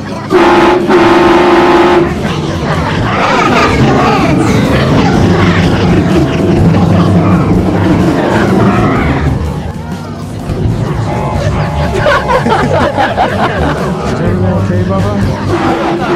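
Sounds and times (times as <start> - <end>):
indistinct voices: 0.0 - 16.1
train horn blast: 0.3 - 2.2
laughter: 1.6 - 9.6, 10.8 - 16.1.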